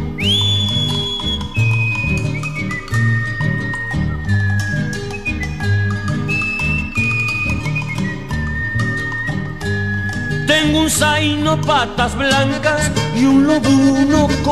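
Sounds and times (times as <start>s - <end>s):
person whistling a melody: 0.0s - 11.6s
strummed instrumental music with a rhythmic beat: 0.0s - 14.5s
speech: 10.9s - 14.5s.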